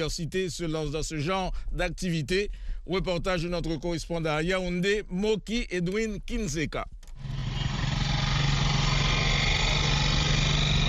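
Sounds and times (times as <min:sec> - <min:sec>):
speech: 0:00.0 - 0:07.3
small motorcycle taxi engine running in Yaoundé: 0:07.2 - 0:10.8.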